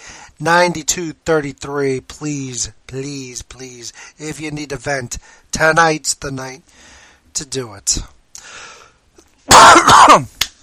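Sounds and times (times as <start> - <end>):
sharp catch of breath: 0.0 - 0.4, 8.4 - 9.0
speech: 0.4 - 8.7, 9.5 - 10.4
person's loud rasping cough: 9.5 - 10.3.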